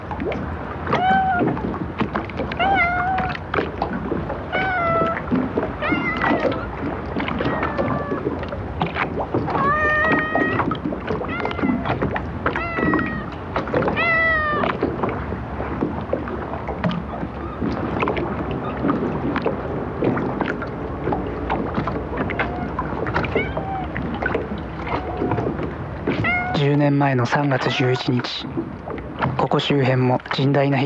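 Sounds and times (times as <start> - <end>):
outdoor wind: 0.0 - 30.8
water noise at a fishing port: 0.0 - 30.8
speech: 0.3 - 1.7, 27.2 - 28.8, 29.4 - 30.8
fluffy Persian-looking stray cat meowing at a fishing port in Japan: 0.9 - 1.6, 2.6 - 3.4, 4.5 - 5.2, 5.8 - 6.7, 7.4 - 8.3, 9.5 - 10.7, 11.3 - 14.8, 22.2 - 24.2, 24.8 - 25.4, 26.2 - 26.7, 27.6 - 28.1.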